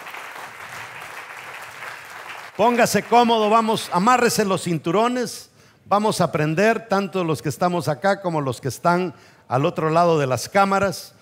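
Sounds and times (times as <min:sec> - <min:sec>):
crowd applauding: 0:00.0 - 0:04.2
speech: 0:02.6 - 0:11.1.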